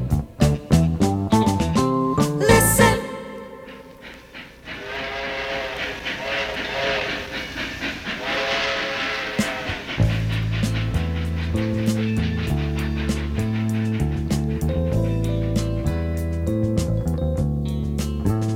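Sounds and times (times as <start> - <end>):
steam train chugging with rhythmic clatter: 0.0 - 18.5
steam train whistle blasts: 2.2 - 7.5, 8.2 - 10.3.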